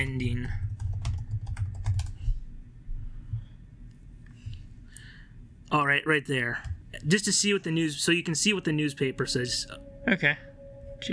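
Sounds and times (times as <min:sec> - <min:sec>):
rapid typing on a computer keyboard: 0:00.0 - 0:02.4
speech: 0:05.7 - 0:11.1.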